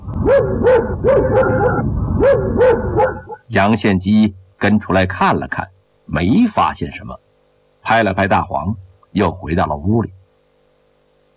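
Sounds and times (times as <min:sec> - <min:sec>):
yellow guard dog barking furiously in a courtyard: 0:00.2 - 0:03.4
speech: 0:00.3 - 0:07.2, 0:07.8 - 0:10.2.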